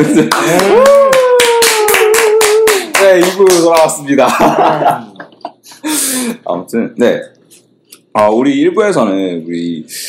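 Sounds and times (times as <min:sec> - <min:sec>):
speech: 0:00.0 - 0:01.2, 0:03.1 - 0:05.2, 0:05.8 - 0:07.4, 0:08.2 - 0:10.0
steady rhythmic hand clapping: 0:00.0 - 0:04.9.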